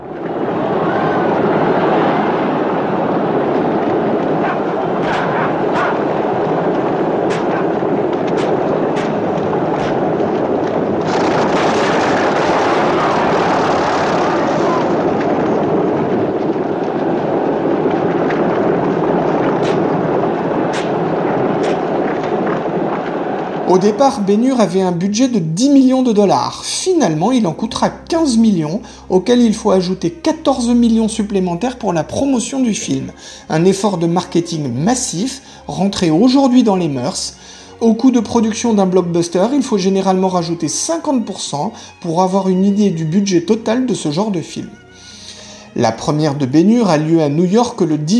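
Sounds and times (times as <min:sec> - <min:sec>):
crowd cheering at a chariot race: 0:00.0 - 0:24.7
horse hooves in a chariot race: 0:00.0 - 0:45.0
chariot wheels rumbling: 0:00.0 - 0:48.1
whip cracks: 0:04.4 - 0:06.0, 0:07.3 - 0:07.7, 0:08.3 - 0:09.2, 0:19.6 - 0:19.9, 0:20.7 - 0:21.0, 0:21.6 - 0:21.9
speech: 0:23.7 - 0:44.8, 0:45.8 - 0:48.1.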